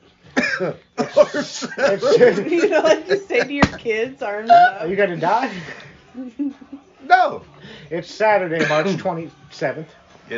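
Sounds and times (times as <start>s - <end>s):
person coughing after smoking weed: 0.4s - 2.3s, 8.6s - 9.0s
speech: 0.6s - 10.3s
laughter: 1.0s - 4.0s, 5.4s - 6.9s.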